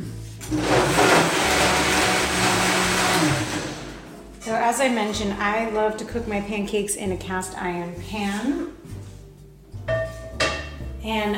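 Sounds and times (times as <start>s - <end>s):
blender blending buckwheat groats and dates: 0.4s - 4.2s
speech: 0.5s - 0.7s, 4.8s - 8.8s, 11.0s - 11.3s.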